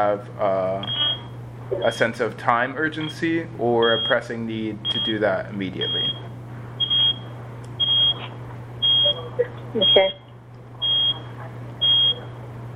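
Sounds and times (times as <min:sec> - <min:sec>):
speech: 0:00.0 - 0:01.0, 0:01.7 - 0:06.3, 0:09.4 - 0:10.2
low constant hum: 0:00.0 - 0:12.7
shrill electronic alarm beeping: 0:00.8 - 0:02.0, 0:03.8 - 0:05.2, 0:05.8 - 0:10.2, 0:10.8 - 0:12.7.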